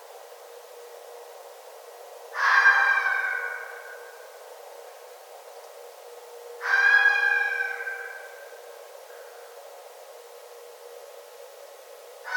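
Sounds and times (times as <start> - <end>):
red fox uttering hoarse wailing screams: 2.4 - 3.8, 6.6 - 8.3.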